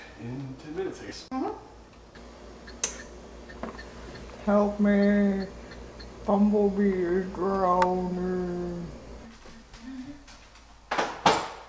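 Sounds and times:
speech: 0.2 - 1.6, 4.5 - 5.6, 6.3 - 9.0
mechanical clock ticking after being set: 2.0 - 8.0.

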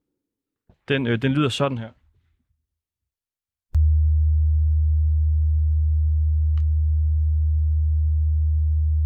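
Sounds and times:
speech: 0.9 - 2.0
deep steady low-frequency hum: 3.8 - 9.0.

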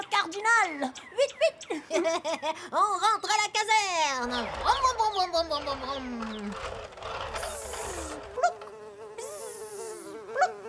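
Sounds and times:
speech: 0.2 - 4.8
fly buzzing: 4.2 - 10.6.

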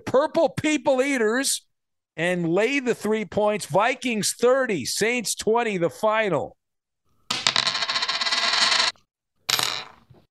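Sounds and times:
speech: 0.1 - 6.6
flipped penny landing and rattling on a hard surface: 7.3 - 10.0.

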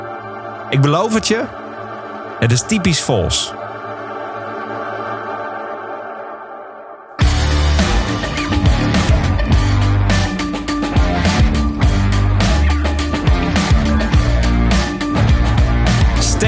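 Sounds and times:
speech: 0.7 - 1.6, 2.4 - 3.6
driving low-end rhythm: 7.2 - 16.4
heavy rock guitars: 7.2 - 16.4.

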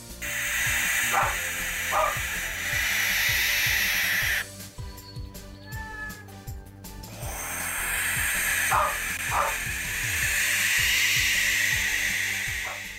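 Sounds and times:
loud steady hissing: 0.0 - 4.5, 7.0 - 12.9
dog barking: 1.0 - 2.2, 8.7 - 9.7.

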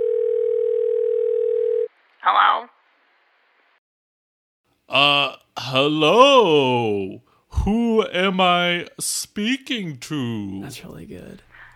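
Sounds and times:
telephone dial tone: 0.0 - 1.9
speech: 2.3 - 2.7, 4.9 - 11.5.

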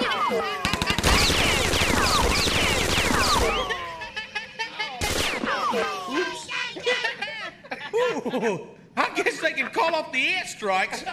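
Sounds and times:
laughter: 0.0 - 11.1
speech: 0.3 - 0.6, 8.4 - 11.1
gunfire in rapid dense bursts: 0.6 - 3.8, 5.0 - 5.8.

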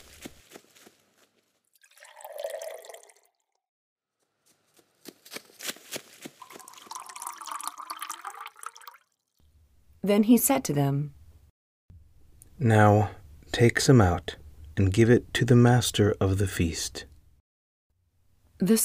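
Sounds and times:
water being poured into large stone jars: 1.8 - 3.6, 6.4 - 9.2
speech: 10.1 - 11.2, 12.6 - 17.1, 18.6 - 18.8.

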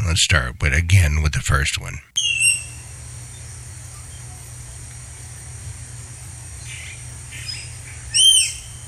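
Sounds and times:
steady low rumble of noise: 0.0 - 8.8
speech: 0.1 - 2.5
tapir giving high thin whistling squeals: 2.2 - 2.9, 6.7 - 8.8.

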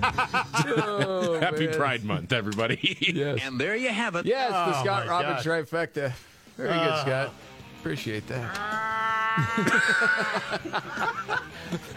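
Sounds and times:
laughter: 0.0 - 1.8, 9.2 - 11.9
speech: 0.0 - 11.9
man imitating caterwauling cats mating: 8.5 - 10.2.

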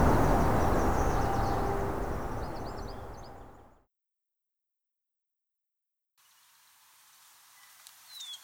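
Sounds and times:
field sparrow singing: 0.0 - 3.6.

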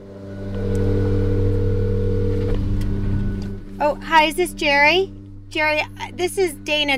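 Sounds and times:
leaf blower carried by a man walking by: 0.0 - 3.6
speech: 3.9 - 6.9.

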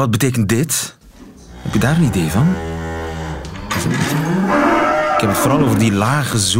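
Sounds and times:
speech: 0.0 - 1.0, 1.6 - 2.7, 3.8 - 6.5
cow mooing low and rumbling: 1.1 - 6.0.

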